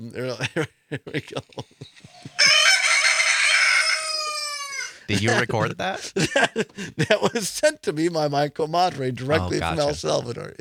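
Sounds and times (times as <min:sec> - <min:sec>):
speech: 0:00.0 - 0:01.7, 0:05.1 - 0:10.6
laughter: 0:00.4 - 0:02.5, 0:05.1 - 0:07.6
rooster crowing played as phone alarm: 0:02.2 - 0:05.1.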